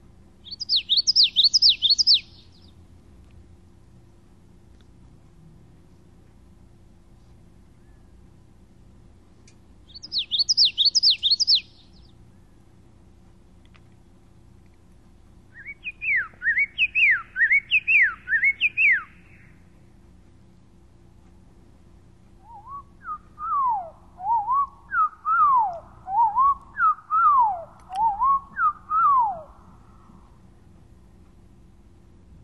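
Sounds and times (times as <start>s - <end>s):
common yellowthroat song played back slowed down: 0.0s - 4.6s, 5.3s - 32.2s
low steady hum: 0.0s - 32.4s
common yellowthroat singing: 0.3s - 3.0s, 7.6s - 8.6s, 9.4s - 19.8s, 22.1s - 31.4s.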